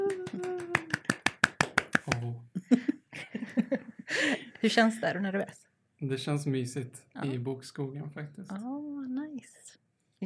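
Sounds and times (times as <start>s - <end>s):
steady hand clapping: 0.0s - 2.4s
laughter: 2.6s - 4.6s
speech: 4.6s - 8.8s.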